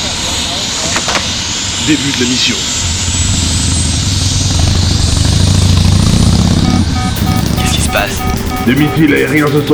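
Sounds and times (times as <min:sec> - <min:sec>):
faint high helicopter engine whine: 0:00.0 - 0:09.7
speech: 0:01.8 - 0:02.9, 0:07.9 - 0:09.7
helicopter rotor thumping while landing at night: 0:03.9 - 0:09.7.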